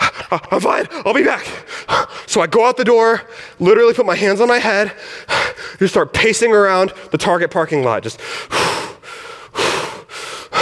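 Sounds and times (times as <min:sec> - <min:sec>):
speech: 0:00.3 - 0:08.7
person panting and catching breath: 0:00.9 - 0:02.3, 0:04.8 - 0:05.8, 0:08.1 - 0:10.6.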